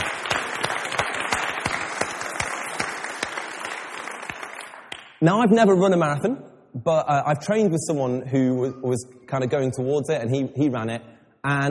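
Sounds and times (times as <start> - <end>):
church audience applauding and cheering: 0.0 - 5.2
speech: 5.2 - 11.6.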